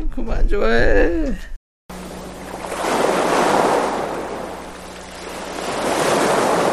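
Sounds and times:
speech: 0.1s - 1.5s
ocean waves breaking on a shore: 1.9s - 6.7s.

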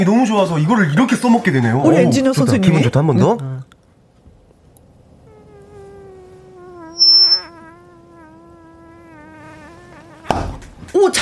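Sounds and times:
speech: 0.0s - 3.6s
voice imitating a mosquito's whine: 5.1s - 10.6s
brief squeak: 7.0s - 7.5s
sudden slap-like burst: 8.8s - 10.8s.

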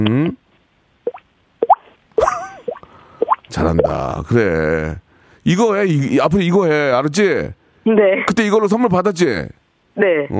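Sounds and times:
speech: 0.0s - 0.4s, 3.5s - 10.3s
person imitating water droplets with their mouth: 1.1s - 4.0s.

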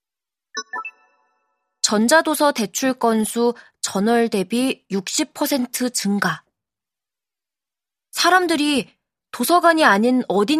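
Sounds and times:
electronic message notification chime: 0.6s - 1.4s
speech: 1.9s - 6.4s, 8.2s - 10.5s.

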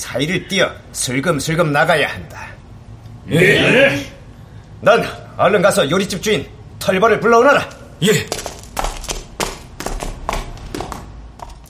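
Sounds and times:
speech: 0.1s - 2.6s, 3.3s - 4.1s, 4.8s - 8.4s
man's heavy footsteps running up a staircase: 8.0s - 11.6s.

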